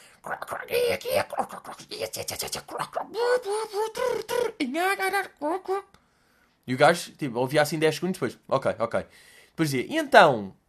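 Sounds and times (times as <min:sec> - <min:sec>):
person imitating pond frogs with croaky gurgling vocal bursts: 0:00.2 - 0:05.8
speech: 0:00.2 - 0:06.0, 0:06.7 - 0:10.6.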